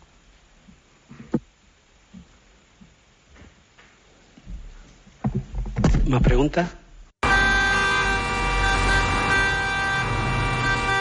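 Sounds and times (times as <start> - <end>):
speech: 6.1 - 6.8
low rumble of traffic: 7.0 - 10.9
car horns honking in traffic: 7.2 - 10.9.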